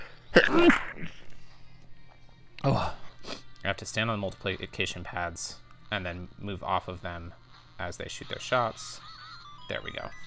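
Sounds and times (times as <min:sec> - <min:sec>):
speech: 0:00.4 - 0:00.8, 0:02.6 - 0:02.9, 0:03.8 - 0:09.1, 0:09.7 - 0:10.2
person sneezing: 0:00.4 - 0:01.1.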